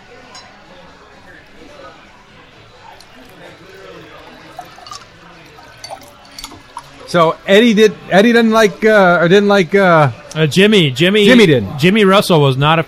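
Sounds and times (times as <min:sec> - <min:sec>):
low murmur of voices: 0:00.0 - 0:12.8
water poured to refill a glass: 0:02.6 - 0:07.4
light clinks: 0:04.6 - 0:07.0
speech: 0:07.1 - 0:12.8.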